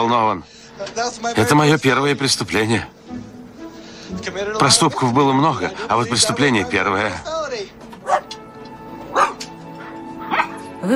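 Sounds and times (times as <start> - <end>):
speech: 0.0 - 3.2, 4.1 - 7.7
terrier and St Bernard puppy barking at each other: 7.9 - 8.4, 9.0 - 10.8
dog yipping: 8.0 - 8.4, 9.1 - 10.6.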